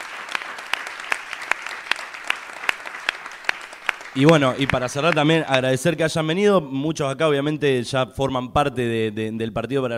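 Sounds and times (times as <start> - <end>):
audience applause at a political gathering: 0.0 - 5.6
speech: 4.2 - 9.9.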